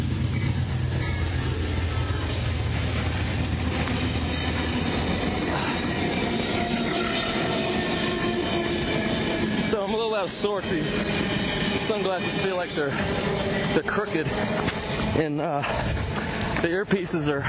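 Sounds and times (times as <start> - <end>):
Amtrak passenger train passing by: 0.0 - 17.4
speech: 10.2 - 17.4.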